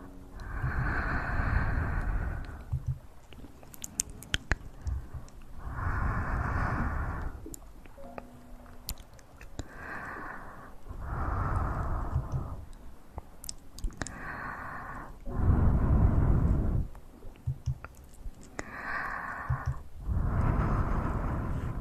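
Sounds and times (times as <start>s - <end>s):
mouth sounds in soft breathy bursts: 0.0s - 12.8s, 13.4s - 21.8s
sharp clicks and taps: 2.7s - 5.4s, 17.3s - 18.6s, 19.5s - 19.8s.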